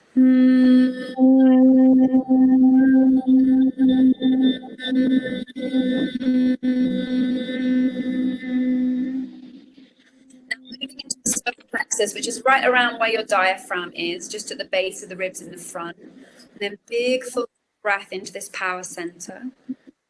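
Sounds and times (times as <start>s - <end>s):
sustained vocal humming for heart chakra meditation: 0.0s - 9.8s
speech: 12.5s - 16.0s, 16.6s - 19.7s.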